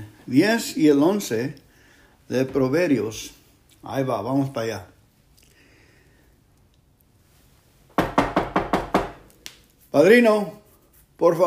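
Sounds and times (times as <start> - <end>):
speech: 0.3 - 1.6, 2.3 - 4.9, 10.0 - 10.6, 11.2 - 11.4
firm knocking on a door: 8.0 - 9.2.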